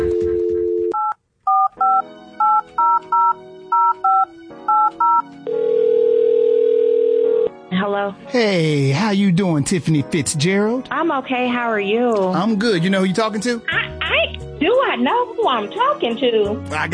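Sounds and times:
telephone dial tone: 0.1s - 7.5s
touch-tone telephone keypad beeps: 0.9s - 5.3s
speech: 8.3s - 16.9s.

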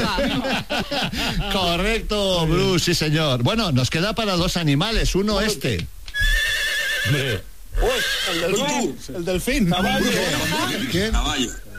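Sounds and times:
laughter: 0.0s - 1.9s
speech: 0.1s - 6.4s, 7.0s - 11.7s
horse neighing: 6.1s - 9.0s, 9.9s - 11.6s.

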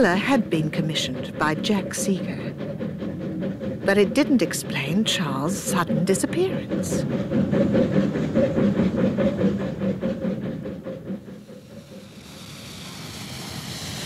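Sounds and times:
speech: 0.0s - 2.6s, 3.9s - 9.8s
train rumbling along the rails with rhythmic clatter: 0.0s - 14.0s
hiss of rushing air and rolling noise: 11.5s - 14.0s.

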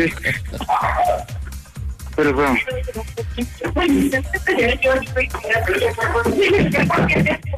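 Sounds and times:
people talking: 0.0s - 1.3s, 2.2s - 7.5s
laughter: 0.0s - 2.5s, 3.1s - 7.3s
dog barking in short sharp bursts: 0.6s - 1.3s.

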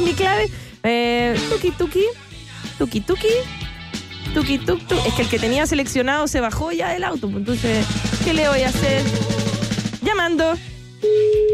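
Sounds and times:
speech: 0.4s - 3.6s, 4.3s - 11.5s
mobile phone call ringing tone: 11.0s - 11.5s.

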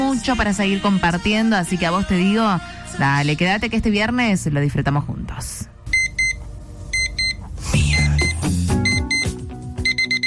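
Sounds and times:
speech: 0.1s - 5.7s
alarm clock beeping: 5.9s - 10.2s.

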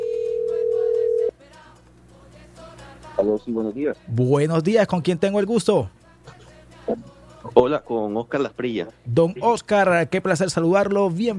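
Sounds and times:
telephone line tone of a call dialed out from a radio studio: 0.0s - 1.3s
speech: 3.2s - 6.0s, 7.6s - 11.3s.

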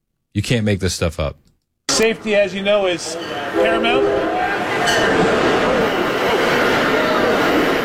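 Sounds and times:
speech: 0.4s - 5.6s
train roaring past: 1.9s - 7.8s.

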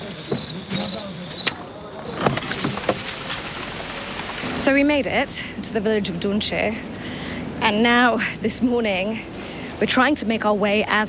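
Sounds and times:
truck clunks and thumps jolting over rough ground: 0.0s - 5.6s
truck carrying aid and relief supplies droning along a muddy road: 0.0s - 11.0s
speech: 4.6s - 6.9s, 7.6s - 11.0s.

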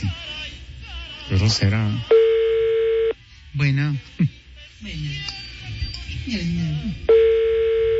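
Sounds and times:
speech: 1.3s - 2.2s, 3.6s - 7.4s
telephone line tone while dialing another number: 2.1s - 3.2s, 7.1s - 7.9s.

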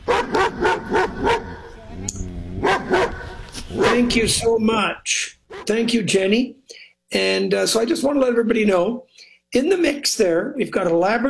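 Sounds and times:
dog barking: 0.0s - 1.8s, 2.6s - 4.2s
speech: 4.0s - 11.2s.

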